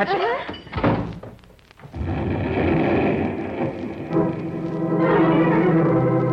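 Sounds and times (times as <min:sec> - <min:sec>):
speech: 0:00.0 - 0:00.5
ether bottle explosion: 0:01.8 - 0:06.2.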